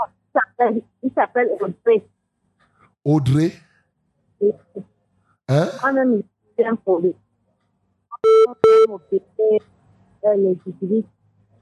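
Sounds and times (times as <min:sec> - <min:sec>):
speech: 0:00.0 - 0:02.1, 0:03.0 - 0:03.7, 0:04.4 - 0:04.9, 0:05.5 - 0:07.2, 0:08.2 - 0:11.2
muffled tinny speech through a phone on speakerphone: 0:03.1 - 0:03.5
loud steady electronic beeps: 0:08.1 - 0:09.0.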